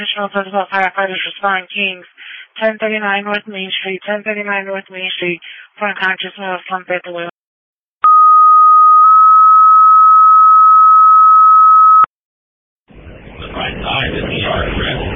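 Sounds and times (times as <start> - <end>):
speech: 0.0 - 7.3, 13.6 - 15.1
two-part fire dispatch pager tone: 8.0 - 12.1.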